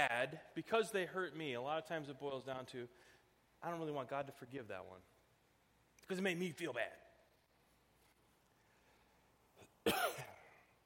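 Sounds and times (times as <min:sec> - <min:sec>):
speech: 0:00.0 - 0:05.1, 0:06.1 - 0:07.0, 0:09.8 - 0:10.3
person coughing: 0:09.6 - 0:10.8.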